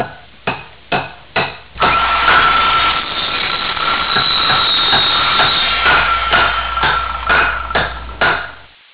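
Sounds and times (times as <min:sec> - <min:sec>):
hammer: 0:00.0 - 0:08.7
saw: 0:01.7 - 0:08.7.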